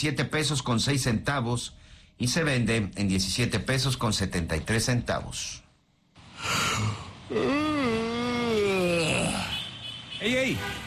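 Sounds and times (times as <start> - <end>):
speech: 0.0 - 5.6, 6.4 - 8.0, 10.2 - 10.8
person snoring loudly while asleep: 6.4 - 9.5.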